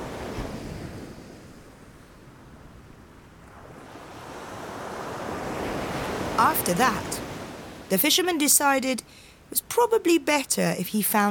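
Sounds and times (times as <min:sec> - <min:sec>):
waves washing onto shore: 0:00.0 - 0:09.5
wind: 0:00.0 - 0:11.2
speech: 0:06.4 - 0:07.2, 0:07.9 - 0:11.2.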